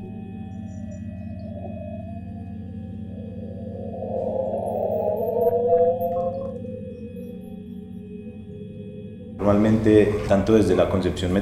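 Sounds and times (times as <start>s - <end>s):
dense grainy electronic texture of layered low tones from granular synthesis: 0.6s - 8.5s
sliding mid-range electronic tone rising: 0.8s - 8.8s
speech: 9.4s - 11.4s.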